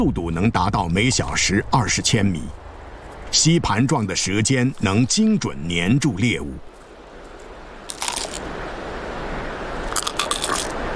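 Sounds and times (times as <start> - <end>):
speech: 0.0 - 2.6, 3.3 - 6.7
chameleon jaws crunching a locust: 7.9 - 8.5, 9.9 - 10.8.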